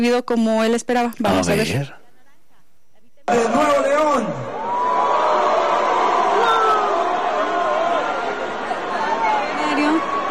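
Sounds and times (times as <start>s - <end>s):
speech: 0.0s - 2.0s, 3.3s - 4.4s
large crowd booing at a stadium event: 3.3s - 10.3s.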